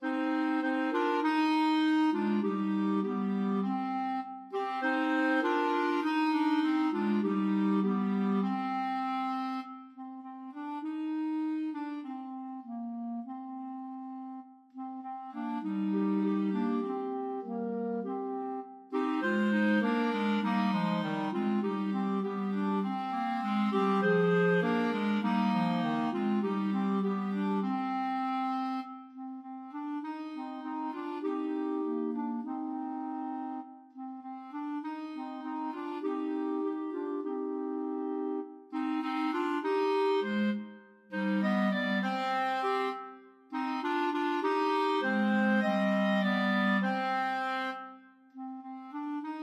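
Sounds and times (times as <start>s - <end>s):
clarinet trio playing: 0.0s - 49.4s.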